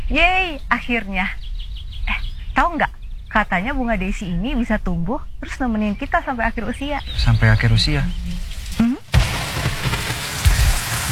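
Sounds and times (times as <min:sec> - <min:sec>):
speech: 0:00.1 - 0:01.4, 0:02.6 - 0:09.0
steady rain hissing and pattering: 0:05.8 - 0:11.1.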